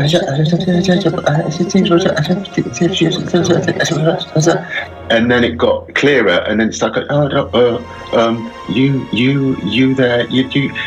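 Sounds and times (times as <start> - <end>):
speech: 0.0 - 10.8
laughter: 1.7 - 4.9
voice imitating eerie childlike chattering with reverb: 2.8 - 4.4.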